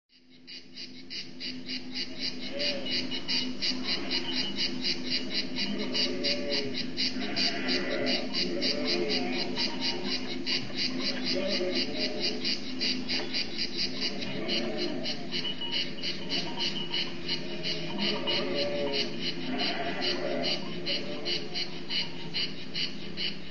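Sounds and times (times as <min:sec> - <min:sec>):
cicada chirring: 0:00.1 - 0:23.4
ewe bleating: 0:02.5 - 0:03.1, 0:03.8 - 0:04.6, 0:05.4 - 0:12.5, 0:13.9 - 0:22.2.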